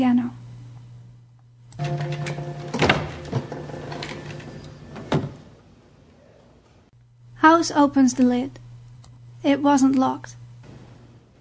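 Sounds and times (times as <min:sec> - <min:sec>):
steady mechanical hum: 0:00.0 - 0:11.4
hospital ward door opening: 0:01.8 - 0:05.6
speech: 0:07.6 - 0:08.6, 0:09.4 - 0:10.4.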